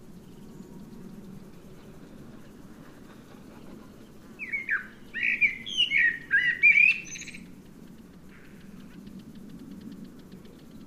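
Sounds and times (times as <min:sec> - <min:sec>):
Eurasian blackbird fluty slurred whistles: 0:04.4 - 0:07.4.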